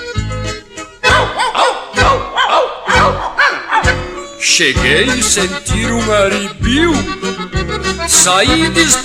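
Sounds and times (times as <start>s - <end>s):
dog barking: 1.0s - 4.2s
speech: 4.6s - 9.0s.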